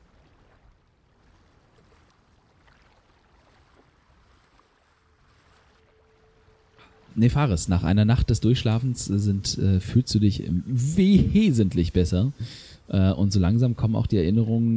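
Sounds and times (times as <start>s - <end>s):
soft splashes: 0.0s - 7.9s
water sloshing against a rocking boat hull: 0.0s - 10.1s
speech: 7.2s - 14.7s.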